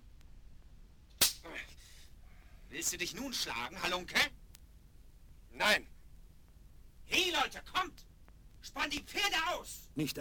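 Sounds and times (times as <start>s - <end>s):
whip lash struck across someone's face: 1.2s - 1.5s
speech: 2.7s - 4.4s, 5.6s - 5.9s, 7.1s - 10.1s.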